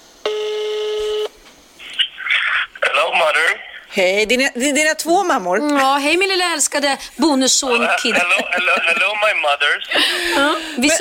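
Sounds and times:
steady buzzy electronic telephone tone while dialing: 0:00.2 - 0:01.4
speech: 0:03.2 - 0:10.9
laughter: 0:07.8 - 0:10.9.

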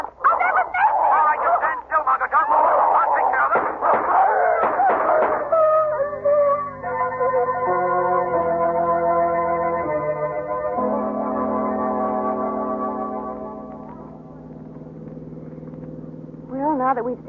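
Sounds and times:
large dogs barking and yelping during a chase: 0:00.0 - 0:01.8, 0:02.4 - 0:06.8
steady sustained tones: 0:05.3 - 0:17.2.

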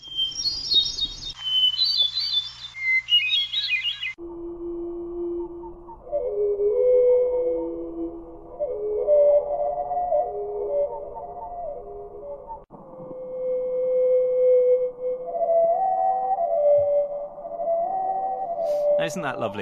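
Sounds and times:
North American hermit thrush song slowed down: 0:00.0 - 0:19.5
speech: 0:19.1 - 0:19.5.

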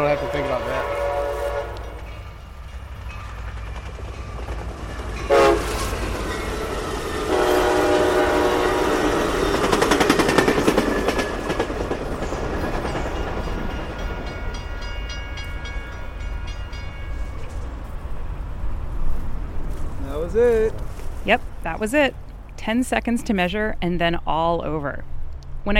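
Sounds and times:
fast train horn: 0:00.0 - 0:02.2, 0:05.3 - 0:06.0, 0:07.1 - 0:09.6
fast train wheels rumbling on rails: 0:00.0 - 0:23.6
speech: 0:21.3 - 0:25.7.

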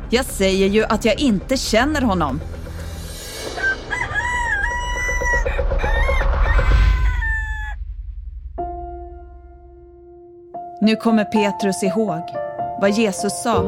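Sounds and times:
speech: 0:00.1 - 0:02.6, 0:10.8 - 0:13.6
rooster crowing: 0:03.5 - 0:07.8.

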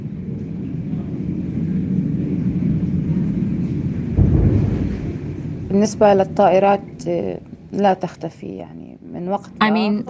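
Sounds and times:
bomb explosions rumbling in Gaza: 0:00.7 - 0:08.0
speech: 0:05.8 - 0:10.0.

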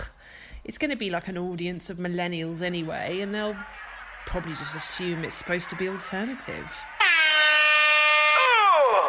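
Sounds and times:
speech: 0:00.6 - 0:06.9
air horn blast with a brassy buzzing tone: 0:07.0 - 0:08.9.

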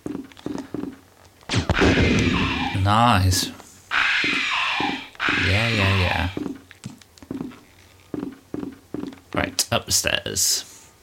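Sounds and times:
gunfire in a horror survival video game: 0:01.5 - 0:02.8, 0:03.9 - 0:06.4
speech: 0:02.8 - 0:03.6, 0:09.7 - 0:10.7.

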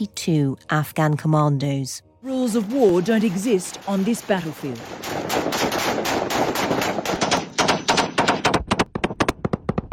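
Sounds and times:
speech: 0:00.0 - 0:07.2
rapid automatic gunfire from fighters shooting at bodies on the ground: 0:03.7 - 0:09.5.

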